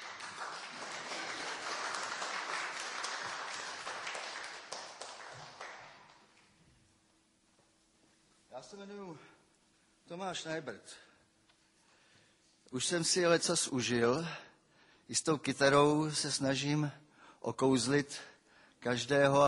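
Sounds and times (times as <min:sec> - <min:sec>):
crowd applauding with dense steady clapping: 0:00.0 - 0:06.4
speech: 0:08.6 - 0:09.4, 0:10.1 - 0:11.1, 0:12.7 - 0:14.5, 0:15.1 - 0:19.4.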